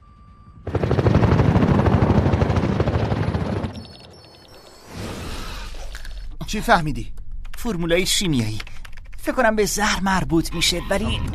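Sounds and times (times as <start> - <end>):
helicopter rotor blades chopping: 0.6 - 4.6
speech: 6.5 - 11.3.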